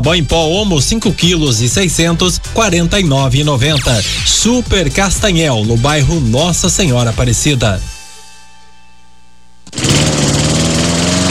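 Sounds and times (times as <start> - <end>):
speech: 0.0 - 7.9
small brushcutter or chainsaw engine running: 9.7 - 11.2.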